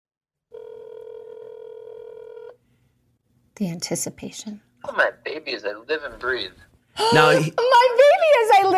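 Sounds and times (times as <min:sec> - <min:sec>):
phone call ringback tone: 0:00.5 - 0:02.6
faint noise: 0:00.6 - 0:08.7
speech: 0:03.6 - 0:08.7.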